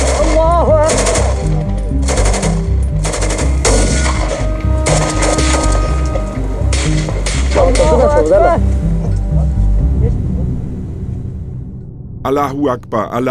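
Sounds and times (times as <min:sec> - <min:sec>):
automatic gunfire in a firefight: 0:00.0 - 0:03.9
low rumble: 0:00.0 - 0:13.3
speech: 0:12.3 - 0:13.3.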